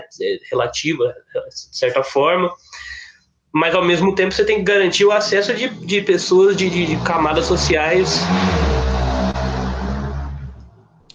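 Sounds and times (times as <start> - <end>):
speech: 0.1 - 8.8
motorcycle roaring past: 5.3 - 10.8.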